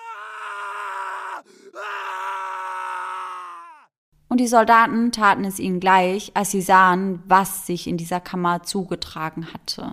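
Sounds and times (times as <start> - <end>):
person screaming: 0.0 - 3.9
speech: 4.3 - 9.9.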